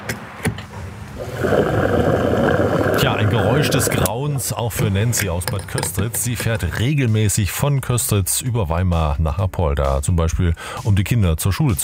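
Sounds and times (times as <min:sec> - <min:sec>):
fuel flowing from a fuel pump nozzle into a car: 0:01.0 - 0:05.2
speech: 0:03.6 - 0:11.8.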